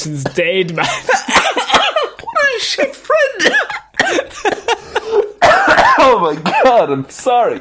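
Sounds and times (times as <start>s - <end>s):
speech: 0.0s - 1.8s, 2.5s - 4.8s, 6.1s - 7.5s
person coughing while laughing: 0.8s - 2.4s, 3.4s - 6.9s.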